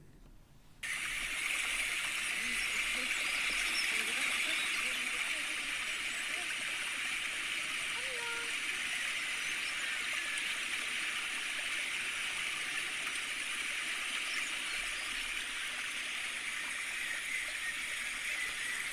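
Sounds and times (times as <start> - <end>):
small brook babbling and splashing: 0.8 - 18.9
murmuring voices: 2.1 - 8.8.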